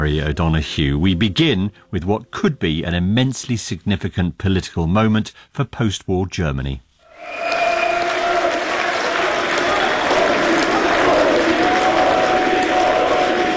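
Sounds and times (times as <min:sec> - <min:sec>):
speech: 0:00.0 - 0:07.6
far-right party supporters cheering a state election victory in Saxony-Anhalt, Germany: 0:07.1 - 0:13.5.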